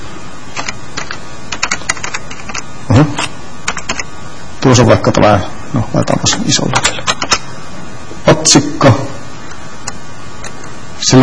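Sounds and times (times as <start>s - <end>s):
typing on a computer keyboard into a rich text editor: 0.6s - 2.6s, 3.6s - 4.1s, 6.7s - 7.4s
speech: 4.7s - 7.1s, 8.4s - 9.0s.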